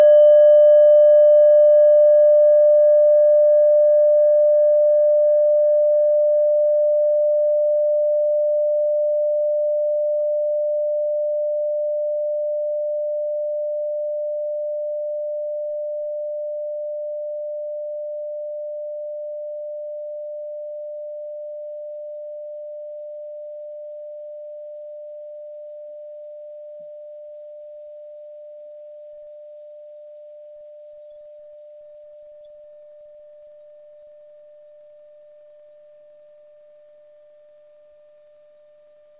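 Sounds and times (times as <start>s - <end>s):
small singing bowl ringing: 0.0s - 39.1s.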